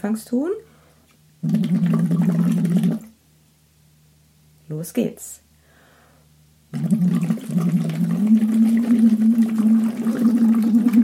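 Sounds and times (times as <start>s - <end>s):
speech: 0.0s - 0.6s, 1.4s - 3.0s, 4.7s - 5.4s, 6.7s - 8.0s
voice humming a melody through a straw into water: 1.4s - 3.1s, 6.7s - 11.0s.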